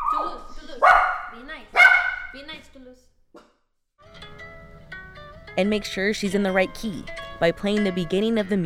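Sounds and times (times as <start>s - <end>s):
dogs barking: 0.0s - 2.4s
speech: 1.5s - 3.6s, 5.6s - 8.6s.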